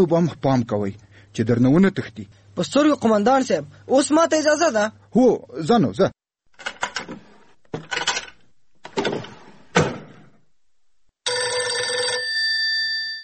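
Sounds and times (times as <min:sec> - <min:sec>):
speech: 0:00.0 - 0:06.2, 0:07.1 - 0:08.0
telephone bell ringing: 0:11.2 - 0:13.2.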